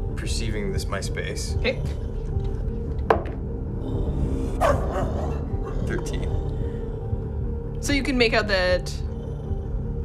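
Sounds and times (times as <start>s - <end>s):
steady low rumbling background: 0.0s - 10.0s
speech: 0.2s - 2.1s, 4.2s - 5.3s, 5.9s - 6.5s, 7.8s - 9.1s
dog barking: 4.6s - 5.7s.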